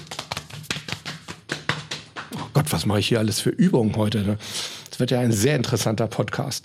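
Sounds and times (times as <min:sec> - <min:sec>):
hands patting and slapping own body: 0:00.0 - 0:02.5
speech: 0:02.6 - 0:06.6.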